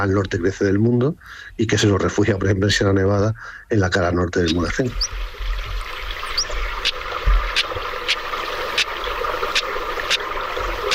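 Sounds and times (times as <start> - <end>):
speech: 0.0 - 5.4
stonechat giving sharp clicking tack calls: 4.4 - 5.2, 5.9 - 10.9
steady rush of flowing water or wind: 4.7 - 10.9.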